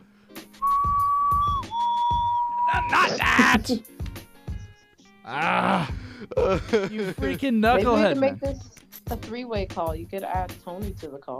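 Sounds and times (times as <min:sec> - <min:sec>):
loud steady shrill whistle blast: 0:00.6 - 0:03.2
laughter: 0:02.7 - 0:03.8, 0:05.3 - 0:08.8
speech: 0:02.9 - 0:04.0, 0:05.3 - 0:11.3.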